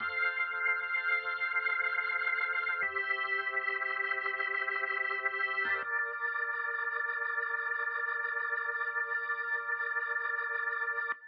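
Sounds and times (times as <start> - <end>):
gospel organ playing in F: 0.0 - 11.2.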